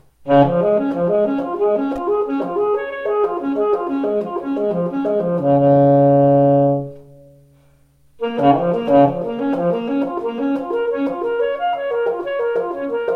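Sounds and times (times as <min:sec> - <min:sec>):
alto voice in B-flat major: 0:00.3 - 0:07.4, 0:08.2 - 0:13.1.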